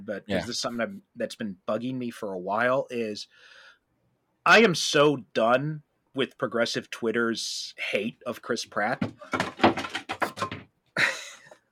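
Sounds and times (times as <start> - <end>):
speech: 0.0 - 3.6, 4.4 - 9.6
plastic objects knocked over by child clattering: 9.0 - 10.7.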